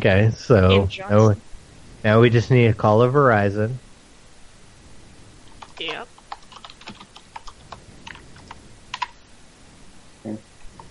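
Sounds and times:
speech: 0.0s - 3.8s, 5.8s - 6.1s, 10.2s - 10.4s
typing on a computer keyboard: 5.6s - 9.1s.

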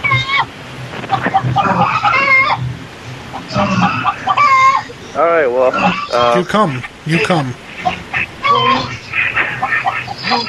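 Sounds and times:
chickens on a TV clucking and squawking: 0.0s - 10.4s
steady hiss: 0.0s - 10.4s
speech: 5.4s - 7.6s.

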